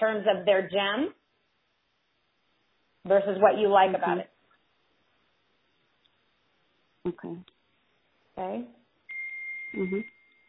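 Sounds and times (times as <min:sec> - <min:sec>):
speech: 0:00.0 - 0:01.2, 0:03.0 - 0:04.3, 0:07.0 - 0:07.5, 0:08.4 - 0:08.8, 0:09.7 - 0:10.2
phone notification beep: 0:09.1 - 0:10.3.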